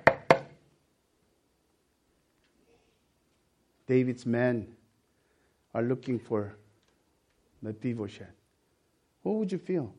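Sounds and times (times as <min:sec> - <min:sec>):
firm knocks on a door: 0:00.0 - 0:00.5
speech: 0:03.9 - 0:04.8, 0:05.8 - 0:06.6, 0:07.6 - 0:08.4, 0:09.2 - 0:09.9.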